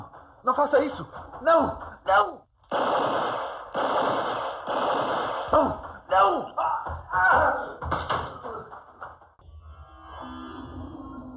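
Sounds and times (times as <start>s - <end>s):
speech: 0.4s - 4.0s
revolver gunshots: 2.7s - 6.2s.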